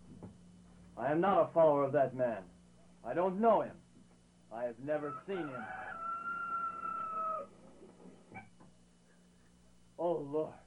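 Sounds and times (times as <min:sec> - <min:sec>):
speech: 0:01.0 - 0:03.8, 0:04.5 - 0:06.0, 0:10.0 - 0:10.6
rooster crowing: 0:05.0 - 0:07.6.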